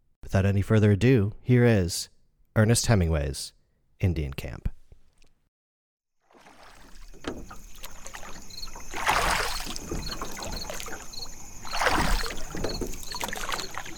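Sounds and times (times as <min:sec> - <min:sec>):
speech: 0:00.3 - 0:04.7
oars dipping and pulling through calm lake water: 0:06.2 - 0:13.9.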